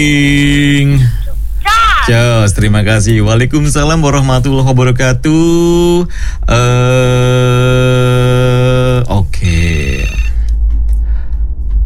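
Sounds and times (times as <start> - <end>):
speech: 0.0 - 1.2, 2.1 - 8.3
low hum: 0.0 - 11.8
phone ringtone signalling an incoming WhatsApp call: 9.5 - 10.4.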